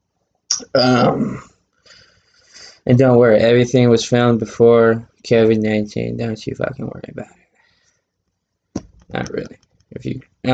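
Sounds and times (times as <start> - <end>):
speech: 0.7 - 1.5, 2.9 - 7.4, 9.1 - 10.5
person coughing: 0.8 - 1.5.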